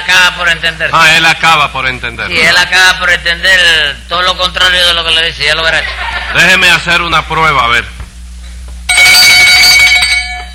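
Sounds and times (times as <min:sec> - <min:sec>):
speech: 0:00.3 - 0:08.0
laughter: 0:05.6 - 0:06.6
small handbell ringing: 0:08.9 - 0:10.5.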